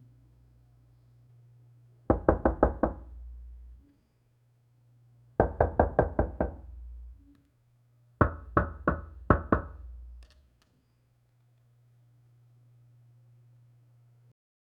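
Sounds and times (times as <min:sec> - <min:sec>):
knocking on a building door: 0:02.1 - 0:03.2, 0:05.4 - 0:06.8, 0:08.2 - 0:10.1.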